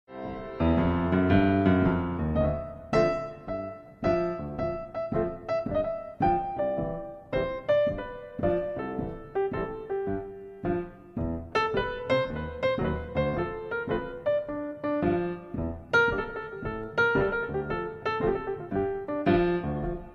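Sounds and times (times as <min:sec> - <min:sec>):
jazz improvisation: 0:00.1 - 0:20.1.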